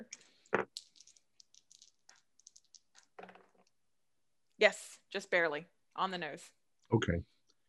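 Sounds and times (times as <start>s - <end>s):
dice rattling and rolling across a surface: 0.3s - 3.8s
speech: 4.6s - 7.3s.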